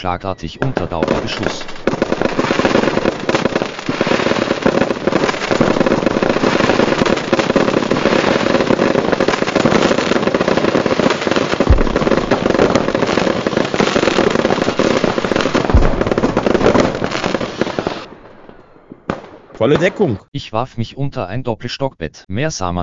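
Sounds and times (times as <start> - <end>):
speech: 0.0 - 2.6, 19.6 - 22.8
fireworks and firecrackers banging and crackling inside a boathouse: 0.6 - 20.1
rockets hissing and shrieking through the room: 0.7 - 20.0.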